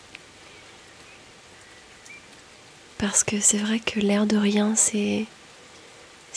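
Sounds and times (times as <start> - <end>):
steady rain during a storm heard through an open window: 0.0 - 6.3
faint bird chirp: 0.5 - 2.4
speech: 3.0 - 5.4.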